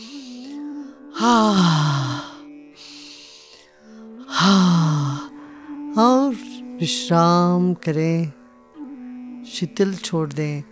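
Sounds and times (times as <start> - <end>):
speech: 1.2 - 2.0, 6.8 - 8.4, 9.6 - 10.7
person breathing deeply during guided yoga relaxation: 1.2 - 3.6, 4.3 - 5.8.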